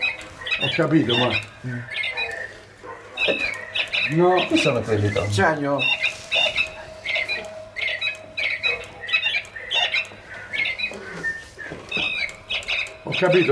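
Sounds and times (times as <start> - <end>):
bird chirping and squawking: 0.0 - 13.4
speech: 0.8 - 2.0, 3.3 - 6.0, 13.2 - 13.4.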